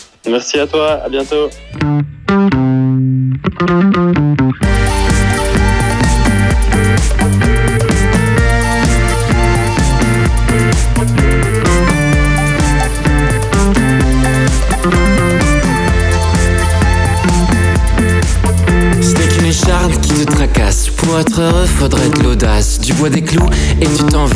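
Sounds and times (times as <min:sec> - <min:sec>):
speech: 0:00.3 - 0:02.1, 0:03.6 - 0:04.9, 0:21.8 - 0:24.3
band with distorted guitars, bass and drums: 0:01.0 - 0:24.3
sparse guitar-like notes: 0:01.5 - 0:20.9.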